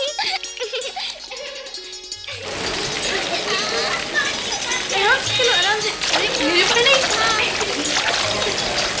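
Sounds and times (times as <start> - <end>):
children chattering and giggling: 0.0 - 8.9
soft music: 0.0 - 8.9
waterfall splashing: 2.4 - 8.9.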